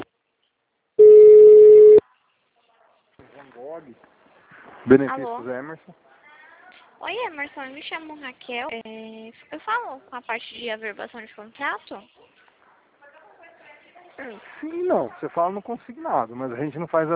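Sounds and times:
telephone line multi-note tones during call transfer: 0:01.0 - 0:02.0
telephone line steady beep: 0:01.0 - 0:02.0
speech: 0:04.9 - 0:06.1, 0:07.1 - 0:12.2, 0:14.2 - 0:17.1.

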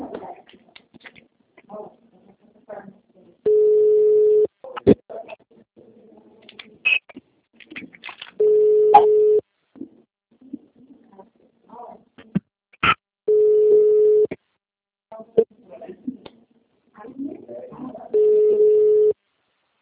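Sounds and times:
telephone ringback tones as a call is placed: 0:03.5 - 0:04.5, 0:08.4 - 0:09.4, 0:13.3 - 0:14.3, 0:18.2 - 0:19.2.

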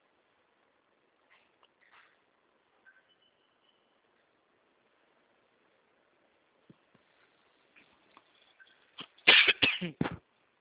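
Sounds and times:
dry coughing: 0:09.2 - 0:10.2.

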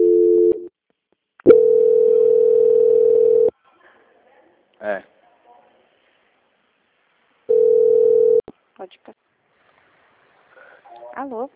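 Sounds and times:
telephone line tones during a call transfer: 0:00.0 - 0:00.6, 0:01.5 - 0:03.5, 0:07.5 - 0:08.4
speech: 0:11.3 - 0:11.5.

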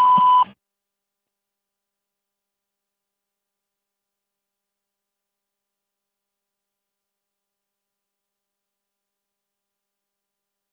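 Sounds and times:
answering machine beep signalling start of message recording: 0:00.0 - 0:00.5.

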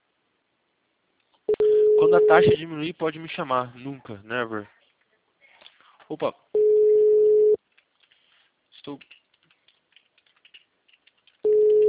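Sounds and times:
telephone call tone on an unanswered number: 0:01.5 - 0:02.6, 0:06.6 - 0:07.6, 0:11.5 - 0:11.8
speech: 0:02.0 - 0:04.8, 0:06.1 - 0:06.5, 0:08.8 - 0:09.2.

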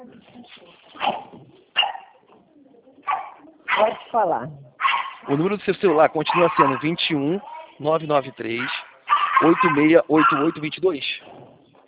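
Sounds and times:
low murmur of noise: 0:00.0 - 0:11.8
dogs barking: 0:00.9 - 0:02.2, 0:03.0 - 0:04.2, 0:04.8 - 0:07.2, 0:08.5 - 0:10.8
speech: 0:03.8 - 0:04.7, 0:05.3 - 0:08.8, 0:09.4 - 0:11.1.

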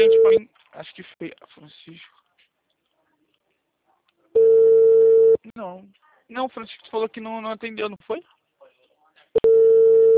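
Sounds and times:
telephone call tone as a call is placed: 0:00.0 - 0:00.4, 0:04.4 - 0:05.4, 0:09.4 - 0:10.1
speech: 0:00.0 - 0:01.4, 0:07.1 - 0:08.3.

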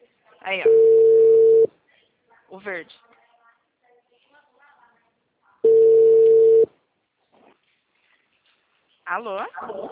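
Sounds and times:
speech: 0:00.5 - 0:00.9, 0:02.5 - 0:03.1, 0:09.1 - 0:09.9
telephone ringback tone on an outgoing call: 0:00.7 - 0:01.7, 0:05.6 - 0:06.7.

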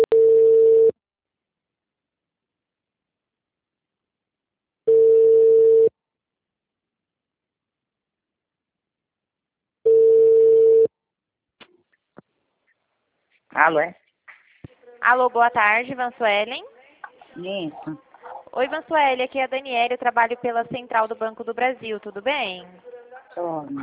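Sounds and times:
telephone ringback tone while placing a call: 0:00.0 - 0:00.9, 0:04.9 - 0:05.9, 0:09.9 - 0:10.9
speech: 0:13.6 - 0:14.0, 0:15.0 - 0:16.7, 0:17.4 - 0:23.8.

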